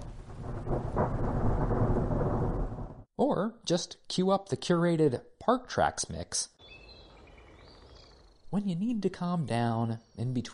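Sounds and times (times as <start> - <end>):
rain hissing in a thunderstorm at a national park: 0.0 - 3.0
thunder rumbling in a thunderstorm at a national park: 0.0 - 3.1
speech: 3.2 - 6.8, 8.5 - 10.5.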